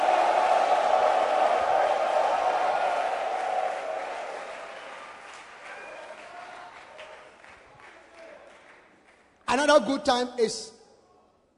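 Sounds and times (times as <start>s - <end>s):
audience shouting: 0.0s - 4.4s
audience clapping: 0.0s - 9.5s
speech: 9.5s - 10.8s.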